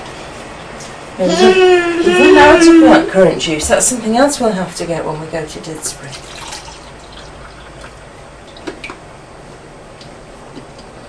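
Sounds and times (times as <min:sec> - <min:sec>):
speech: 0:01.2 - 0:06.4
electric kettle finishing boiling: 0:05.6 - 0:09.0.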